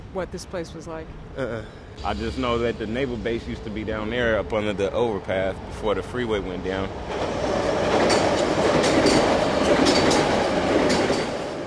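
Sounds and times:
speech: 0.1s - 7.6s
commuter train rumbling on elevated track: 2.0s - 11.6s
train wheels clickety-clack striking rail joints: 7.0s - 11.6s.

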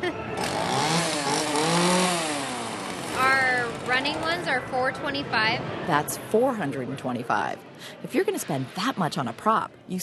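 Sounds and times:
chainsaw engine revving with a buzzing rasping edge: 0.4s - 3.9s
speech: 4.1s - 10.0s.

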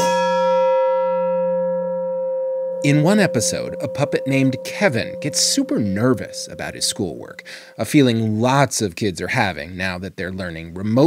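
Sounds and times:
metal mixing bowl struck like a chime: 0.0s - 8.2s
speech: 2.8s - 11.0s.

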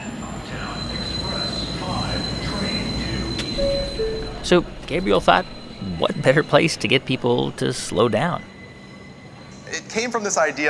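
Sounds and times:
subway train high wheel squeal: 0.0s - 10.4s
subway train rumbling through a shopping mall and subway station in Manhattan: 0.0s - 10.6s
speech: 4.5s - 8.5s, 9.7s - 10.6s.

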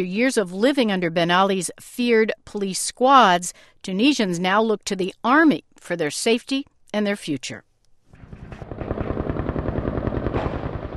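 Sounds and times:
speech: 0.0s - 7.7s
helicopter rotor chopping overhead: 8.1s - 10.9s
rapid bursts of gunfire: 8.1s - 10.9s.

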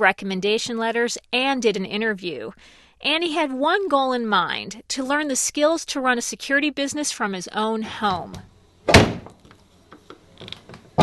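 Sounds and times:
speech: 0.0s - 9.1s
sticking first-floor office door being forced open: 8.1s - 9.5s, 10.4s - 11.0s.

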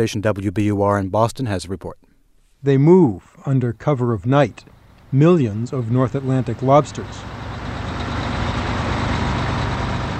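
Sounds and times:
speech: 0.0s - 2.0s, 2.6s - 7.3s
heavy truck engines idling at loading docks: 4.3s - 10.1s.

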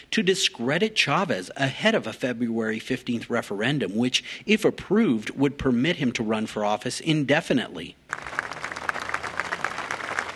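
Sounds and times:
speech: 0.0s - 8.4s
crowd applauding at a solemn outdoor ceremony outside a synagogue: 8.1s - 10.3s.

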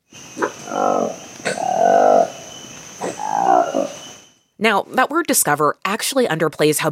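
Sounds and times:
faint constant hiss: 0.0s - 6.9s
orange-lipped long black-tailed monkey giving harsh frog-like croaking calls: 0.1s - 4.3s
speech: 0.7s - 1.2s, 4.6s - 6.9s.

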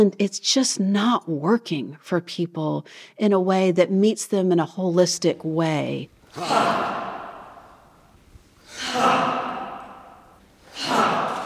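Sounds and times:
speech: 0.0s - 7.0s
people on yoga mats breathing deeply together in a church sanctuary: 6.2s - 11.4s.

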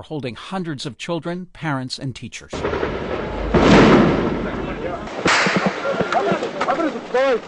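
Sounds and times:
speech: 0.0s - 7.4s
explosions during a battle at a school in Beslan, Russia: 2.5s - 5.9s
gunfire during a battle at a school in Beslan, Russia: 2.6s - 6.0s.

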